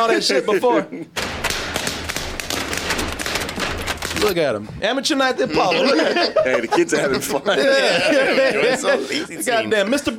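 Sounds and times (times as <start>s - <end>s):
speech: 0.0s - 1.3s, 4.2s - 10.1s
bubble wrap popping under dancing feet: 1.2s - 4.3s
laughter: 5.4s - 10.1s.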